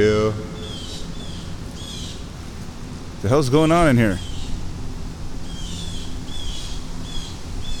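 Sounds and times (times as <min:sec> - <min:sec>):
hiss: 0:00.0 - 0:07.7
birds chirping and squabbling: 0:00.4 - 0:03.1, 0:03.8 - 0:07.7
speech: 0:03.2 - 0:04.3.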